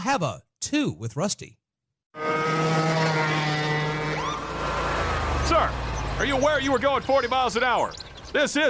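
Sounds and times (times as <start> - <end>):
speech: 0.0 - 2.6, 5.5 - 8.6
riding lawnmower engine roaring at high revs in a residential area: 2.2 - 8.5.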